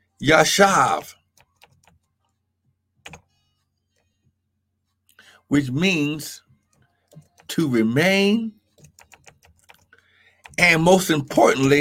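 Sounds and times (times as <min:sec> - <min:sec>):
speech: 0:00.2 - 0:01.2, 0:05.5 - 0:06.4, 0:07.5 - 0:08.6, 0:10.6 - 0:11.7
keyboard keystrokes: 0:03.0 - 0:03.2, 0:08.8 - 0:10.6.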